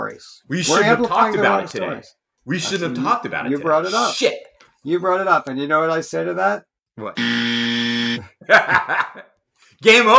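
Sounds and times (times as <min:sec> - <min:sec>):
speech: 0:00.0 - 0:10.1
loud flat game show buzzer: 0:07.2 - 0:08.3
burst of laughter: 0:08.3 - 0:09.4.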